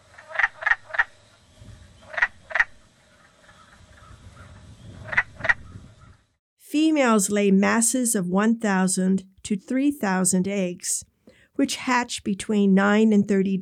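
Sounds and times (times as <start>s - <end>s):
male wood frogs raspy quack-like breeding-season calls: 0.0s - 1.1s, 2.0s - 2.8s, 5.1s - 5.6s
speech: 6.8s - 13.6s.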